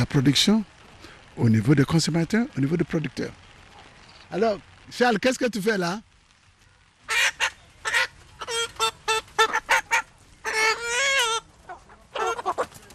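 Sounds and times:
speech: 0:00.0 - 0:00.7, 0:01.4 - 0:03.4, 0:04.3 - 0:06.1
hens clucking and squawking: 0:07.1 - 0:12.9.

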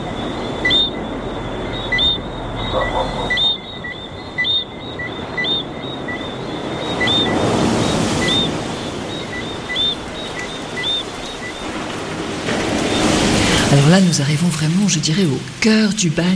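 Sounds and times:
high chirping of birds or insects: 0:00.0 - 0:12.0
ocean surf washing onto shore: 0:00.0 - 0:16.3
speech: 0:13.8 - 0:16.3.

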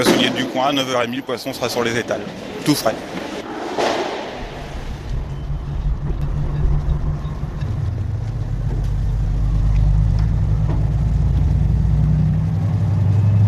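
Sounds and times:
speech: 0:00.0 - 0:03.2
truck engine rumbling at a fishing port in La Turballe France: 0:04.4 - 0:13.4.

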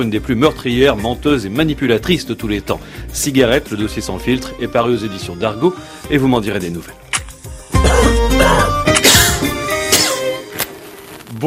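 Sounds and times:
speech: 0:00.0 - 0:07.0
abrupt fairly loud coughs: 0:07.8 - 0:10.3.

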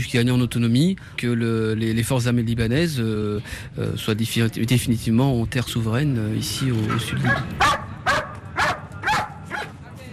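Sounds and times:
speech: 0:00.0 - 0:07.8
working dog barking in southern Lebanon: 0:06.9 - 0:09.7.

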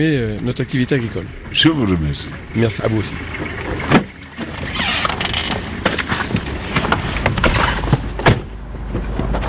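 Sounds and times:
speech: 0:00.0 - 0:04.0
car driving road noise heard from inside: 0:00.0 - 0:09.4
car thumps and rattles from road bumps: 0:03.3 - 0:09.4.

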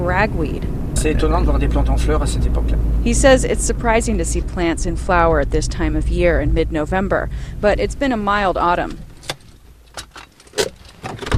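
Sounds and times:
speech: 0:00.2 - 0:09.1
people climbing out of a parked car: 0:08.8 - 0:11.3.

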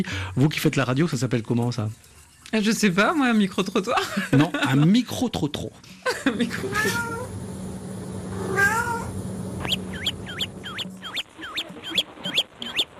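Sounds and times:
speech: 0:00.0 - 0:07.2
laughter: 0:03.9 - 0:05.0, 0:06.0 - 0:06.8
low hum: 0:06.0 - 0:12.7
several kittens meowing: 0:06.5 - 0:07.4, 0:08.5 - 0:10.8.

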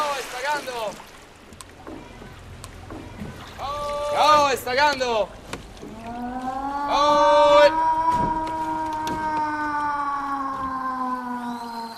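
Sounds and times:
speech: 0:00.6 - 0:01.2, 0:03.6 - 0:05.4, 0:06.9 - 0:07.9
high-water flood warning siren in Venice: 0:05.8 - 0:11.9.

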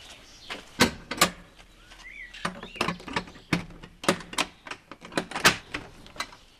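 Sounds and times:
heavy wine cellar door at a Slovenian vineyard clunking and rattling open: 0:02.4 - 0:06.4.

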